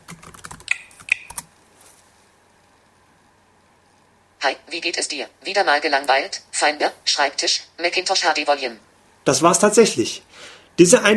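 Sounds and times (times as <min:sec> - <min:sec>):
typing a password on a laptop keyboard: 0:00.0 - 0:01.5
electronic chirps: 0:00.7 - 0:01.4
speech: 0:04.4 - 0:11.1.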